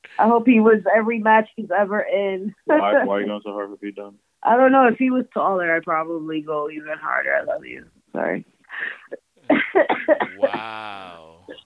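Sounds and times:
speech: 0.2 - 11.6
woman coughing hard: 2.7 - 3.3, 9.5 - 10.6
laughter: 2.7 - 4.1, 8.9 - 11.6.

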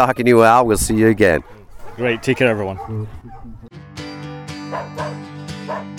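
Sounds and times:
speech: 0.0 - 3.8
dog barking playfully: 1.8 - 3.6, 4.7 - 5.9.

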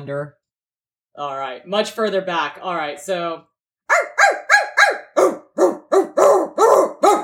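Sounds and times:
speech: 0.0 - 0.4, 1.2 - 4.3
person imitating a dog barking: 3.9 - 7.2.

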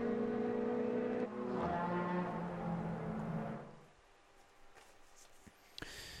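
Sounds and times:
pit lane noise: 0.0 - 3.8
Audi race car engine droning in pit stop: 0.0 - 3.9.

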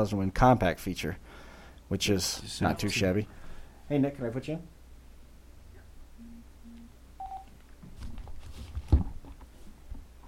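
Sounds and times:
speech: 0.0 - 4.7
short electronic telephone dialing tone beep: 6.2 - 7.5
low thumps and handling noise: 7.5 - 10.2.

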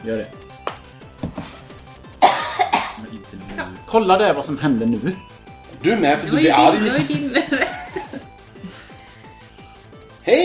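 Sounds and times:
speech: 0.0 - 0.4, 3.1 - 8.0, 10.3 - 10.4
person coughing dry coughs at a home in Frölunda Gothenburg Sweden: 2.2 - 3.0
laughter: 6.6 - 8.3.

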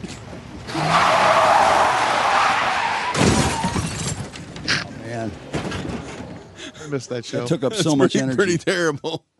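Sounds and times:
truck tires skidding with a screeching squeal: 0.5 - 6.5
speech: 6.9 - 9.3.

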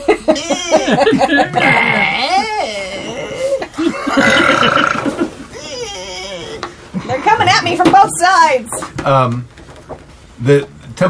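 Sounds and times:
laughter: 0.0 - 8.0
speech: 0.3 - 2.3, 8.0 - 9.6, 10.4 - 11.0
whiny burp: 1.4 - 6.7.

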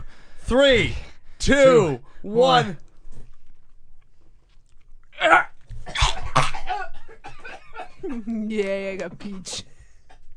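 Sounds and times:
speech: 0.5 - 2.8, 5.2 - 5.4, 8.0 - 9.7
person dry gagging and retching after eating: 5.2 - 6.9.

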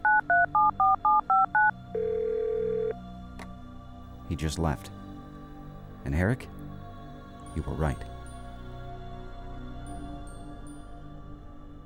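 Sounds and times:
touch-tone beeps of a phone number being keyed in: 0.0 - 3.0
speech: 4.4 - 5.0, 6.0 - 6.6, 7.6 - 8.1.

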